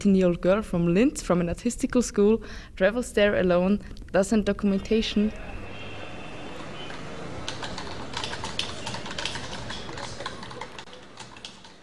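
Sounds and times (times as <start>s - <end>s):
speech: 0.0s - 5.6s
typing on a computer keyboard: 6.6s - 11.8s.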